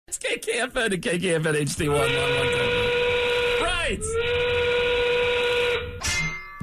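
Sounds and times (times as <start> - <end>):
speech: 0.3 - 2.9, 3.8 - 4.6
factory steam whistle blast: 1.9 - 6.0.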